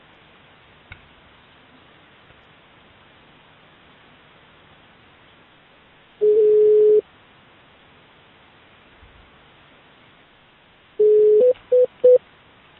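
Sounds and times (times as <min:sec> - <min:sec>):
short telephone beeps: 0:06.2 - 0:07.0, 0:11.0 - 0:12.2
telephone dialing tones: 0:11.0 - 0:12.2.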